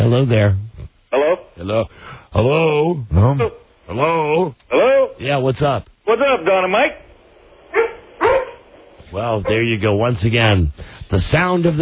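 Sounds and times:
speech: 0:00.1 - 0:00.6, 0:01.6 - 0:07.0, 0:09.1 - 0:11.8
dog barking: 0:07.7 - 0:08.7.

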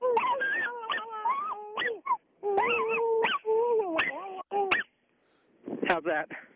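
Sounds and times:
dog whimpering and yipping: 0:00.0 - 0:04.9.

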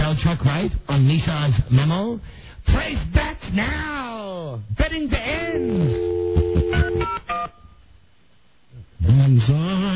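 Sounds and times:
speech: 0:00.2 - 0:04.0, 0:04.6 - 0:07.6, 0:08.8 - 0:09.9
electronic telephone keypad dialing tones: 0:05.6 - 0:07.6.

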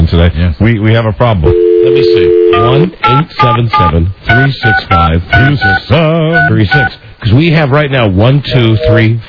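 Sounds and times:
speech: 0:00.1 - 0:09.2
telephone busy signal: 0:01.5 - 0:05.8.

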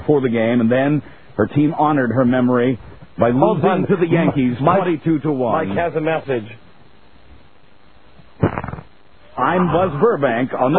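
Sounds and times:
speech: 0:00.1 - 0:06.6, 0:09.4 - 0:10.7
fart sound effect: 0:08.4 - 0:08.9.

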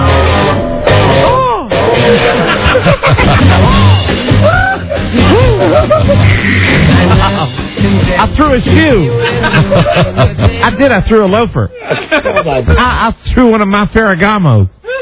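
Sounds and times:
man screaming and yelling in wails: 0:01.0 - 0:01.8, 0:03.6 - 0:06.9
laughter: 0:02.0 - 0:08.0, 0:08.8 - 0:13.2
speech: 0:08.4 - 0:14.8.

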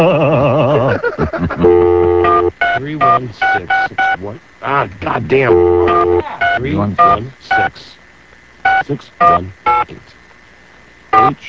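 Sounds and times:
laughter: 0:00.0 - 0:02.2
faint steady hum: 0:00.0 - 0:11.4
speech: 0:01.1 - 0:02.1, 0:02.8 - 0:08.0, 0:08.7 - 0:10.2, 0:11.1 - 0:11.4
telephone keypad dialing tones: 0:01.6 - 0:04.2, 0:05.5 - 0:07.7.

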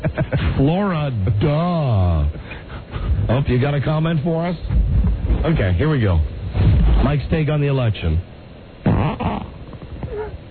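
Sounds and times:
speech: 0:00.1 - 0:02.4, 0:03.3 - 0:04.8, 0:05.4 - 0:06.4, 0:07.0 - 0:08.3
loud buzzy fart: 0:06.5 - 0:07.3, 0:08.8 - 0:10.3
short squeaky whine: 0:08.8 - 0:10.4.

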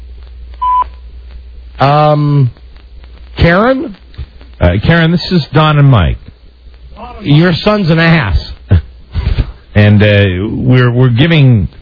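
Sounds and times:
quiet phone line hiss: 0:00.5 - 0:01.2
answering machine beep: 0:00.6 - 0:01.0
speech: 0:01.8 - 0:02.6, 0:03.4 - 0:04.0, 0:04.6 - 0:06.3, 0:07.0 - 0:08.5, 0:09.8 - 0:11.7.

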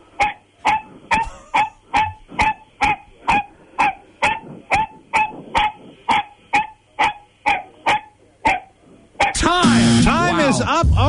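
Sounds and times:
dog barking sharply: 0:00.2 - 0:09.4
speech: 0:10.6 - 0:11.0.

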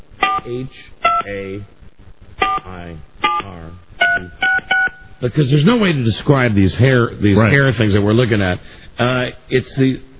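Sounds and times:
speech: 0:00.4 - 0:01.8, 0:02.5 - 0:10.1
telephone keypad dual-tone beeps: 0:03.3 - 0:05.1.

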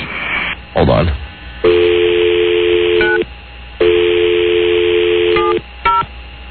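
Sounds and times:
speech: 0:00.8 - 0:01.9
telephone dial tone: 0:01.7 - 0:03.2, 0:03.8 - 0:06.0.

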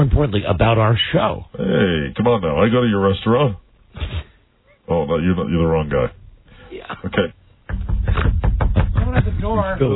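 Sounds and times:
speech: 0:00.0 - 0:03.6, 0:04.9 - 0:07.4, 0:09.2 - 0:09.9
knocking on a door: 0:07.7 - 0:09.7.

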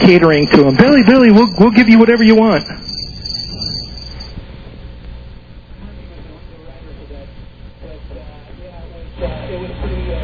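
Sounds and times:
crickets chirping: 0:00.0 - 0:04.4
speech: 0:00.1 - 0:02.9.

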